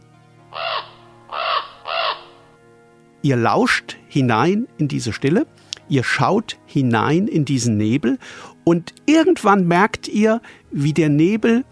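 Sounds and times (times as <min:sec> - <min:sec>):
raven or crow cawing: 0:00.5 - 0:02.5
speech: 0:03.2 - 0:11.7.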